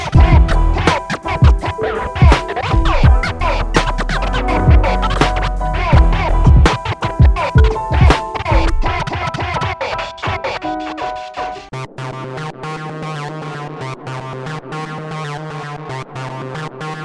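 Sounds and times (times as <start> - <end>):
steady loud beat: 0.0 - 10.7
DJ turntable scratching: 0.0 - 17.0.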